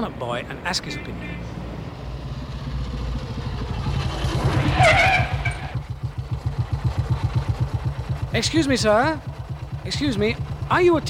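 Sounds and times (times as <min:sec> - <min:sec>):
speech: 0:00.0 - 0:01.7, 0:08.4 - 0:11.0
motorcycle engine revving and roaring past: 0:01.4 - 0:08.3.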